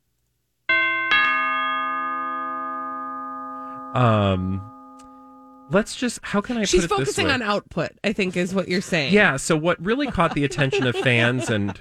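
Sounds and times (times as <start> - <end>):
doorbell ding-dong chime: 0.7 - 5.8
speech: 3.9 - 4.7, 5.7 - 11.7
laughter: 6.5 - 7.4, 9.8 - 11.7.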